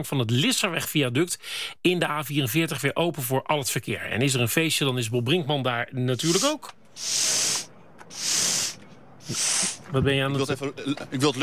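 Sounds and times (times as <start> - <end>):
speech: 0.0 - 7.6, 9.3 - 11.4
person blowing or sniffing air: 6.2 - 9.8.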